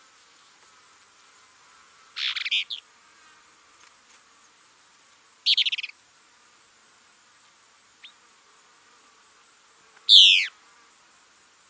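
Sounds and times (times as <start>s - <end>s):
faint high insect drone: 0.0s - 11.6s
Plain-crested elaenia calls, Elaenia cristata: 2.2s - 2.8s, 10.1s - 10.5s.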